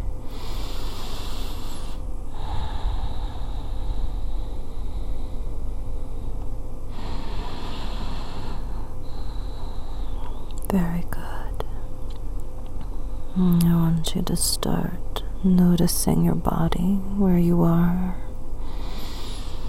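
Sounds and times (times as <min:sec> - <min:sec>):
slow deep breaths during a guided relaxation exercise: 0:00.0 - 0:10.7, 0:12.8 - 0:13.4, 0:18.3 - 0:19.6
speech: 0:10.7 - 0:11.2, 0:13.4 - 0:18.2.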